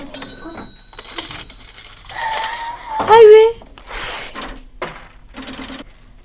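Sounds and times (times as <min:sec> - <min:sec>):
cash register ringing with a bright bell tone: 0:00.0 - 0:02.7, 0:04.9 - 0:06.2
speech: 0:03.0 - 0:03.4.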